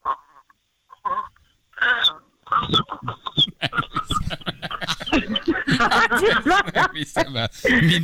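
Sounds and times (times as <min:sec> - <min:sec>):
voice imitating a little chick cheeping: 0:00.0 - 0:03.6
laughter: 0:02.5 - 0:08.0
speech: 0:05.8 - 0:08.0.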